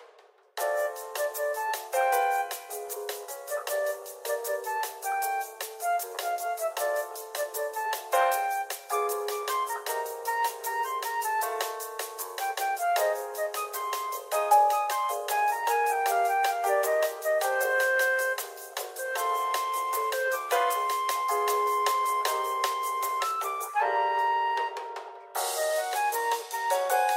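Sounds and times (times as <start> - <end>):
elevator music: 0.6 - 27.1.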